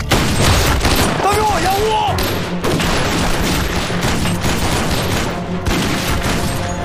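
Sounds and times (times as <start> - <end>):
rapid gunfire in an armed standoff: 0.1 - 6.7.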